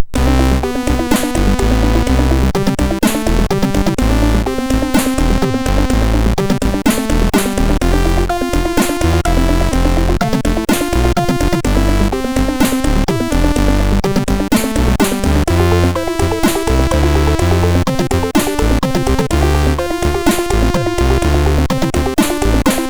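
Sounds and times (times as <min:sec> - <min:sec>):
chiptune melody on a MOS6581R2 SID chip: 0:00.2 - 0:22.8.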